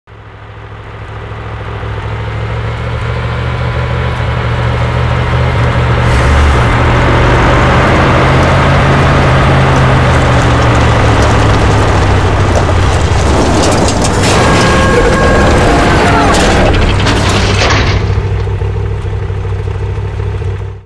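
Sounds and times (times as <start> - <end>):
armored personnel carrier entering: 0.1 - 20.8.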